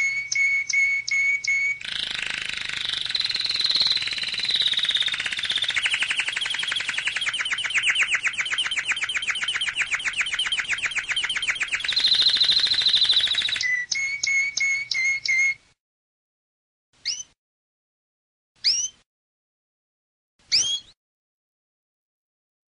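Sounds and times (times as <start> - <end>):
canary singing rolling trills and whistled notes: 0.0 - 15.6, 17.0 - 17.4, 18.6 - 19.0, 20.5 - 21.0.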